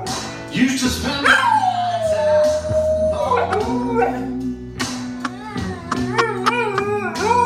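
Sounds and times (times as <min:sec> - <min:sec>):
speech: 0:00.6 - 0:01.6
big dog howling: 0:01.2 - 0:04.5, 0:05.2 - 0:07.4.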